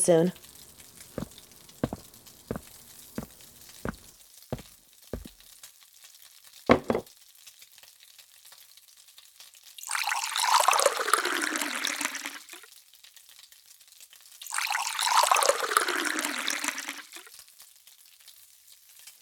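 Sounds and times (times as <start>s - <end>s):
speech: 0.0s - 0.4s
coffee pouring into cups: 9.8s - 12.4s, 14.5s - 17.0s.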